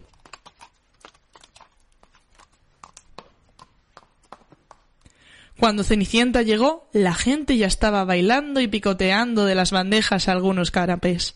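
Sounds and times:
horse hooves clip-clopping pulling a carriage: 0.0s - 5.1s
speech: 5.6s - 11.3s.

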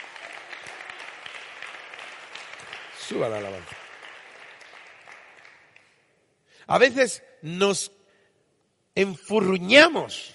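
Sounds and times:
congregation applauding at a worship service: 0.0s - 6.1s
speech: 3.1s - 3.8s, 6.7s - 8.0s, 9.0s - 10.3s.

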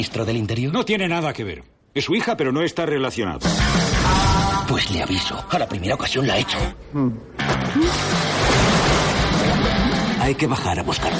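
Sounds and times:
speech: 0.0s - 8.4s, 10.2s - 11.1s
water bubbling and churning: 7.8s - 10.4s.

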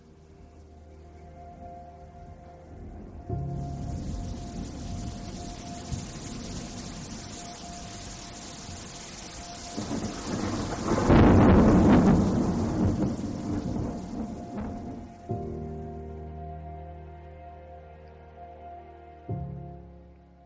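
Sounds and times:
soft sustained musical tones: 0.0s - 20.4s
loud rolling thunder from a night-time storm: 2.3s - 15.5s.

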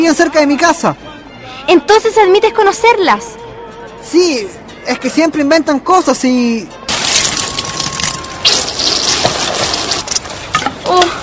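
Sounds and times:
speech: 0.0s - 3.4s, 4.0s - 6.8s
glass of punch tipping over and spilling onto a suit: 6.9s - 10.5s.

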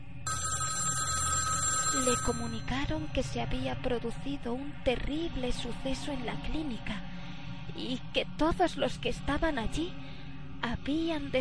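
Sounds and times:
telephone bell ringing: 0.3s - 2.8s
speech: 2.1s - 7.1s, 7.7s - 10.0s, 10.6s - 11.3s.

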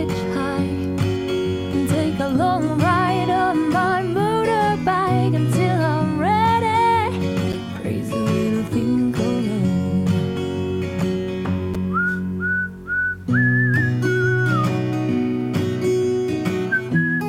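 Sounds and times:
instrumental music of a song: 0.0s - 17.2s
bright whistled melody in a song: 11.8s - 15.1s, 16.5s - 17.2s.

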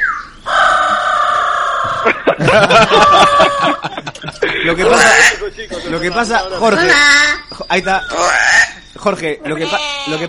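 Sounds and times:
parrot squawking: 0.0s - 2.0s, 4.9s - 10.2s
laughter: 1.8s - 6.7s
speech: 2.4s - 10.2s.

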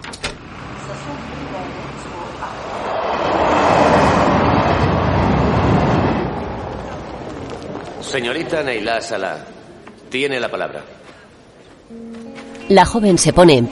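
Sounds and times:
train rumbling on rails: 0.4s - 8.6s
speech: 1.0s - 3.0s, 8.1s - 11.0s, 11.9s - 13.6s.

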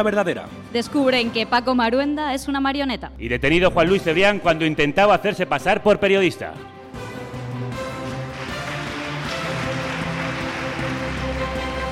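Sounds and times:
speech: 0.0s - 6.7s
audience applause for two presenters at the end of a radio news segment: 7.9s - 11.9s.

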